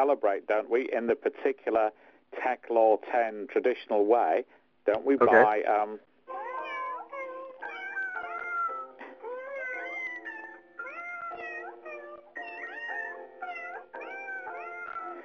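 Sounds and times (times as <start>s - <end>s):
speech: 0.0s - 6.1s
chorus of cat meows forming a tune: 6.3s - 15.2s.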